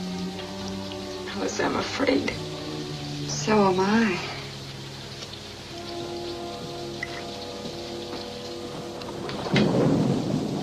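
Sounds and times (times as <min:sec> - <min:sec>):
steady rain in a thunderstorm: 0:00.0 - 0:10.6
deep roll of thunder: 0:01.3 - 0:10.6
speech: 0:01.4 - 0:02.5, 0:03.4 - 0:04.4.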